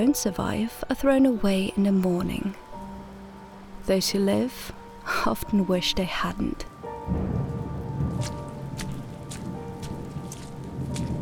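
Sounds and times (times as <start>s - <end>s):
speech: 0.0s - 2.6s, 3.9s - 7.6s, 8.2s - 8.4s
steady rain falling on a hard surface: 2.1s - 11.2s
distant thunder: 6.9s - 11.2s.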